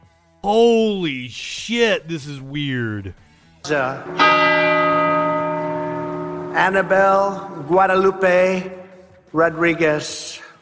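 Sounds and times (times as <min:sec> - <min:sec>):
speech: 0:00.4 - 0:05.2, 0:06.6 - 0:10.4
loud church bell strikes: 0:03.7 - 0:09.0.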